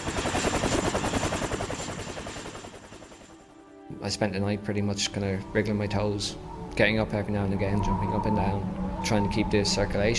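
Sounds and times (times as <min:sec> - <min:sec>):
helicopter flying overhead with rotor blades chopping: 0:00.0 - 0:03.5
speech: 0:04.0 - 0:10.1.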